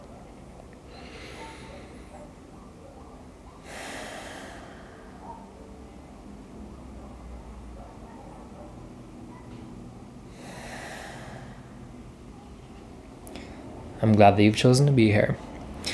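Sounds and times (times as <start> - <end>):
deep breaths in and out: 0.8 - 2.4, 3.5 - 5.5, 10.2 - 12.1, 13.2 - 13.9, 15.8 - 15.9
speech: 14.0 - 15.5.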